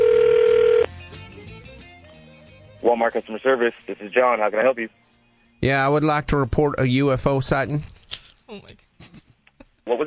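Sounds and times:
steady single-pitched electronic telephone call tone: 0:00.0 - 0:00.9
speech: 0:02.8 - 0:05.0, 0:05.6 - 0:09.2.

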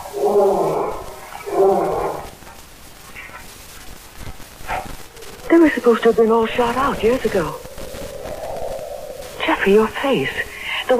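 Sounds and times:
lion roaring: 0:00.0 - 0:02.3
speech: 0:05.6 - 0:07.6, 0:09.6 - 0:10.9.

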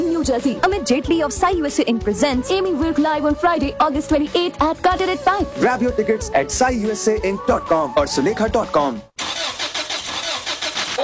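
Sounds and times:
speech: 0:00.2 - 0:09.2
car engine cranking as it tries to start: 0:09.2 - 0:11.0.

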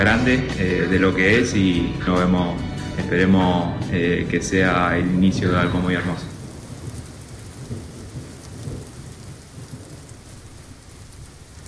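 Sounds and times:
speech: 0:00.0 - 0:06.3
heavy rain in a song: 0:00.0 - 0:11.6
deep rolling thunder in a song: 0:03.7 - 0:11.6.

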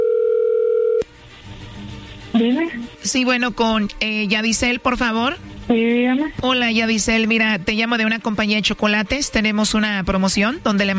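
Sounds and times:
telephone dial tone while a call is dialed: 0:00.0 - 0:01.0
speech: 0:02.4 - 0:10.9.

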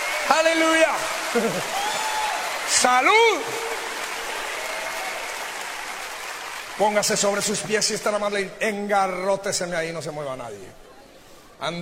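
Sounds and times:
large crowd applauding: 0:00.0 - 0:08.2
speech: 0:00.3 - 0:02.0, 0:02.7 - 0:03.9, 0:06.8 - 0:10.9, 0:11.6 - 0:11.8.

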